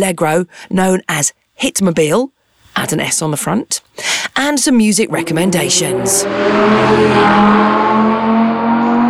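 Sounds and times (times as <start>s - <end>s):
speech: 0.0s - 8.5s
BMW 318 Grand Tourer 7-seater car engine running: 4.1s - 7.7s.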